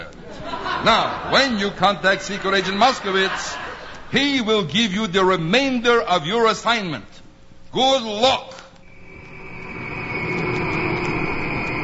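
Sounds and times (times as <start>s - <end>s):
laughter: 0.2s - 4.1s
speech: 0.8s - 7.1s, 7.7s - 8.5s
jet airplane taking off from Tel Aviv: 8.8s - 11.8s.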